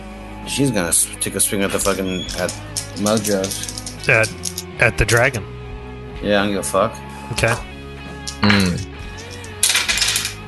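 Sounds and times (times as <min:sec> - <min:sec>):
speech: 0:00.5 - 0:05.6, 0:06.2 - 0:07.7
dice rolling on a hard table: 0:02.4 - 0:04.6, 0:09.2 - 0:10.4.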